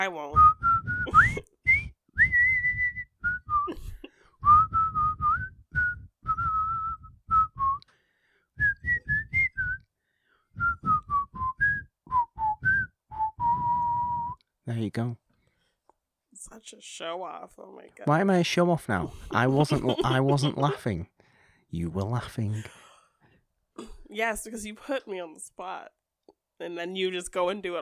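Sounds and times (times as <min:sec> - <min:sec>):
speech: 0:00.0 - 0:00.4, 0:14.9 - 0:15.2, 0:16.5 - 0:22.8, 0:24.2 - 0:26.0, 0:26.6 - 0:27.8
person whistling a movie tune: 0:00.4 - 0:08.0, 0:08.6 - 0:09.9, 0:10.5 - 0:14.5
laughter: 0:19.3 - 0:21.1.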